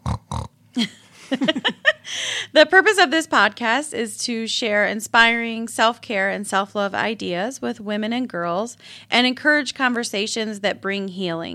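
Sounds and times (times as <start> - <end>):
pig grunting: 0.0 - 0.5
laughter: 0.8 - 2.2
speech: 0.8 - 11.5.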